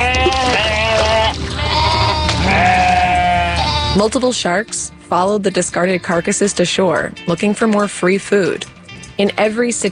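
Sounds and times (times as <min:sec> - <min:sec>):
sheep bleating: 0:00.0 - 0:04.1
speech: 0:04.0 - 0:09.9.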